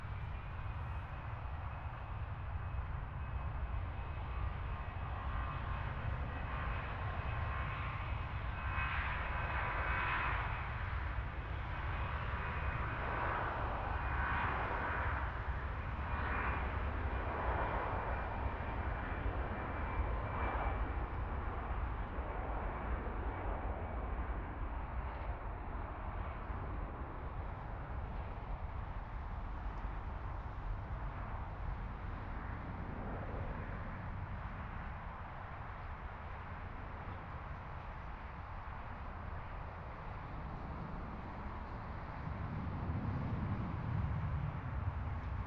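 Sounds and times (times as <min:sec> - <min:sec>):
airplane: 0:00.0 - 0:45.4.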